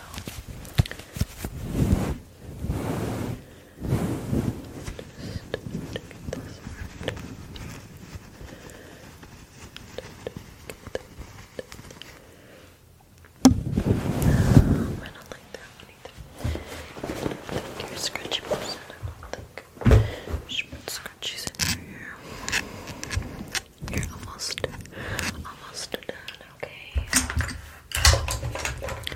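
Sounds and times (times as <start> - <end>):
brief soft whispering: 0.0 - 1.3, 4.8 - 12.7, 14.1 - 27.6
hair rustling and scratching against the microphone: 0.0 - 12.5, 13.5 - 29.1
heavier rubbing: 1.2 - 12.4, 13.4 - 25.9.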